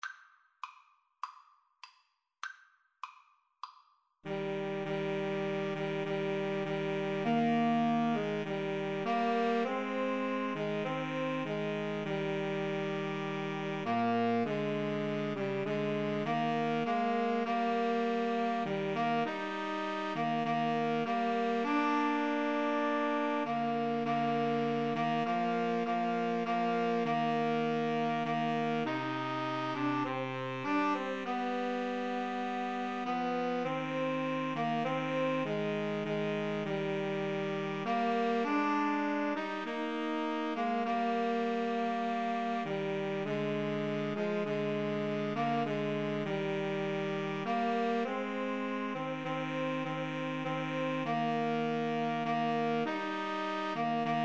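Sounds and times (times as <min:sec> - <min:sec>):
woodwind trio with saxophone playing: 0:04.3 - 0:54.2.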